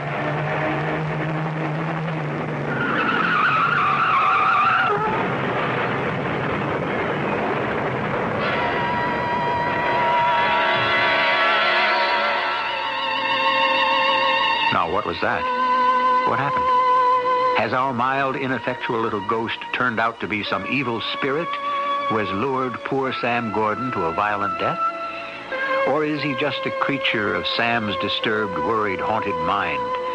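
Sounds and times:
car engine rumbling: 0.0 - 27.4
car tires squealing as it swerves off the road to avoid a truck: 2.7 - 5.4
speech: 15.1 - 15.6, 16.3 - 16.7, 17.6 - 25.0, 25.9 - 30.0.

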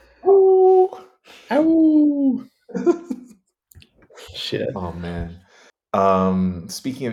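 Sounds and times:
person imitating an eager whimpering hound dog: 0.2 - 2.5
speech: 4.5 - 5.4, 6.0 - 7.1.

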